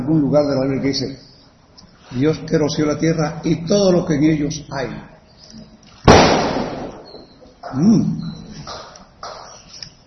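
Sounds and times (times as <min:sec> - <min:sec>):
noise: 0:00.0 - 0:10.0
speech: 0:00.1 - 0:05.6, 0:07.7 - 0:08.8
gunshot bang: 0:06.1 - 0:07.3.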